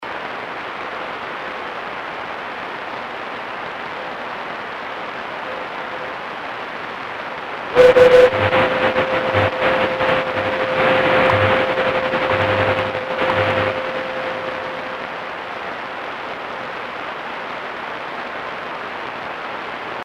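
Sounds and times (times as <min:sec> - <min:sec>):
25 MHz AM CW radio time signal: 0:07.8 - 0:15.3.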